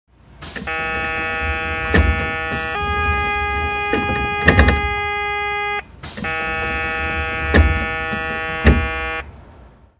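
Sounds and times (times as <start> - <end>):
door closing: 0.4 - 9.2.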